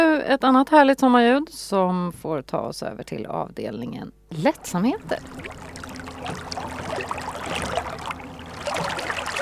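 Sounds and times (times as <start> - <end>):
speech: 0.3 - 6.5
low hum: 2.0 - 9.4
water lapping against a moored boat by a jetty: 4.4 - 9.4.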